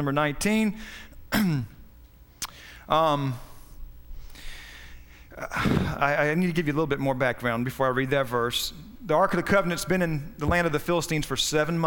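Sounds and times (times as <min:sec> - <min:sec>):
speech: 0:00.0 - 0:01.8, 0:02.9 - 0:03.5, 0:05.4 - 0:11.8
man clearing his throat: 0:01.3 - 0:01.8, 0:05.4 - 0:06.0.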